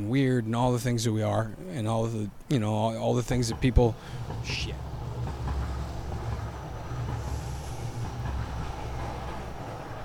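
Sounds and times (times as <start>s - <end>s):
speech: 0.0s - 4.9s
train rumbling past: 2.6s - 10.0s
rhythmic clatter of train wheels on the track: 2.9s - 10.0s.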